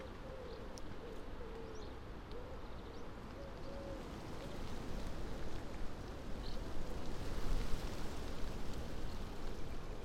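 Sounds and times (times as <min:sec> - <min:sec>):
wind moving through trees in rural Northumberland: 0:00.0 - 0:10.0.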